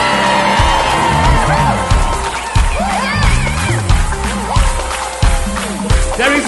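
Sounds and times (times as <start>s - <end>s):
large indoor crowd shouting and cheering: 0.0s - 6.4s.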